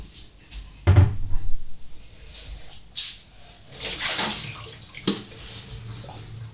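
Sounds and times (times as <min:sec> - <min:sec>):
hollow clunks and knocks of a container being handled: 0:00.9 - 0:01.6
water sloshing and pouring out of a tank: 0:03.7 - 0:06.0.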